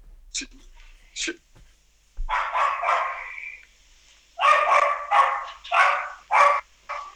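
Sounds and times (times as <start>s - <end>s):
dog barking upstairs: 2.2s - 3.7s, 4.4s - 7.1s.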